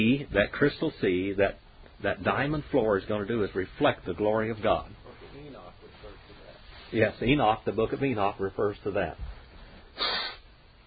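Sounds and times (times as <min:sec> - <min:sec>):
speech: 0:00.0 - 0:05.0, 0:06.9 - 0:09.3
person sneezing after a day of strong wind and dust: 0:10.0 - 0:10.5.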